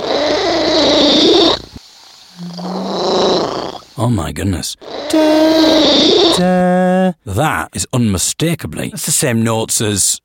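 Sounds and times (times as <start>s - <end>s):
cat purring: 0.0s - 1.8s, 2.4s - 3.9s, 4.8s - 6.5s
speech: 4.1s - 10.2s.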